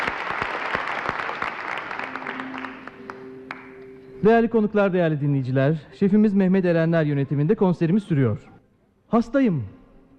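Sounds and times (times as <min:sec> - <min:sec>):
studio audience applauding at a live folk music concert: 0:00.0 - 0:03.8
speech: 0:04.2 - 0:08.5, 0:09.1 - 0:10.1.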